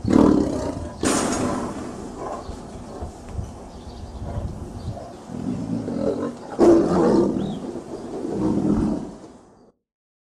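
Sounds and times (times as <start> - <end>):
tiger roaring and growling: 0.0 - 3.1, 4.2 - 9.2.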